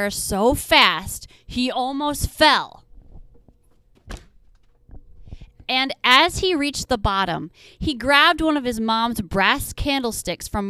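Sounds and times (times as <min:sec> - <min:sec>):
speech: 0:00.0 - 0:02.8, 0:05.7 - 0:10.6
heavy door thudding: 0:03.9 - 0:04.7.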